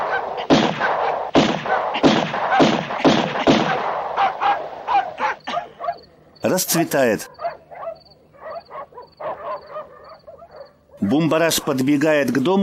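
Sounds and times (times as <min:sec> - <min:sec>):
dog barking and whimpering: 0:00.0 - 0:02.8, 0:03.5 - 0:06.1, 0:07.2 - 0:11.0
pistol gunshots in a film scene: 0:00.0 - 0:04.6
speech: 0:06.4 - 0:07.4, 0:11.1 - 0:12.6.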